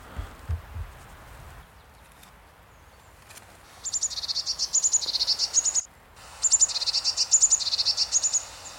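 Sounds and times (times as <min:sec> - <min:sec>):
faint low thumps: 0:00.2 - 0:01.0
blue tit calls: 0:03.7 - 0:08.7.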